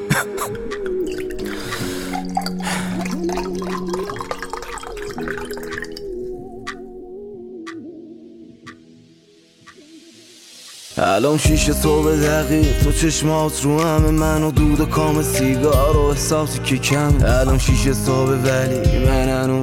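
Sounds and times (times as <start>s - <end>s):
person drinking a glass of water: 0.1s - 6.2s
speech: 0.2s - 0.9s, 11.2s - 19.6s
liquid gurgling: 0.9s - 6.8s.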